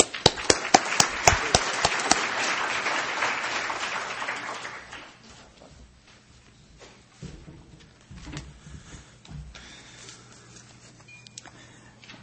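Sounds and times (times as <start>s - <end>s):
conference audience applause welcoming a speaker: 0.0s - 5.2s.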